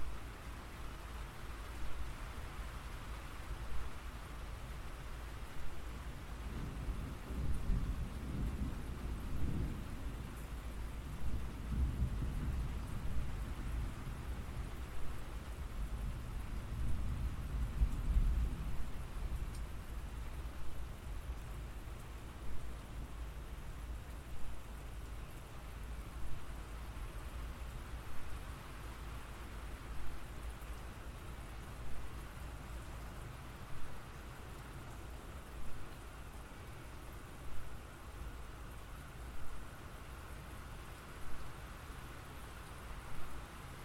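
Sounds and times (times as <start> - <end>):
rain falling steadily: 0.0 - 43.8
low rumble of thunder: 6.5 - 14.9.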